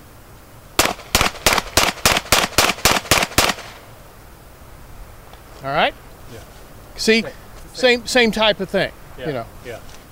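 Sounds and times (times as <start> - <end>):
semi-automatic handgun firing rapid shots at a target: 0.8 - 3.8
speech: 5.6 - 9.9.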